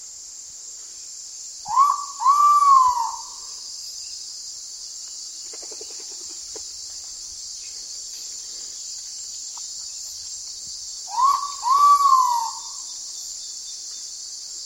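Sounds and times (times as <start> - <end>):
loud continuous insect chorus: 0.0 - 14.6
Ivory-breasted pitta Pitta maxima double whistle: 1.7 - 3.5, 11.1 - 12.8.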